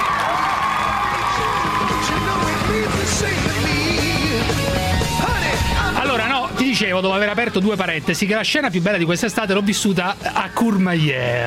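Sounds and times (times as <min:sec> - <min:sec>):
crowd applauding on a radio show: 0:00.0 - 0:04.5
crowd cheering and shouting on a radio show: 0:00.0 - 0:06.9
speech: 0:06.2 - 0:11.4.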